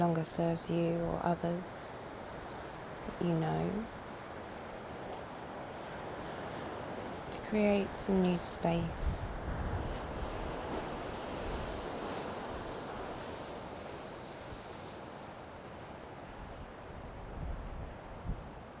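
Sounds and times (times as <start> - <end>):
speech: 0.0 - 2.0, 3.1 - 4.0, 7.5 - 9.6
steady ocean surf washing on shore: 0.0 - 18.7
brief louder ocean wave splash: 3.8 - 16.9.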